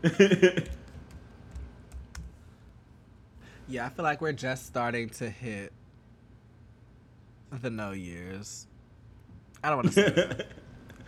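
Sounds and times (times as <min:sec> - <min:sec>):
speech: 0:00.0 - 0:00.8, 0:03.7 - 0:05.8, 0:07.5 - 0:08.7, 0:09.6 - 0:11.0
faint computer keyboard clicks: 0:00.6 - 0:02.4.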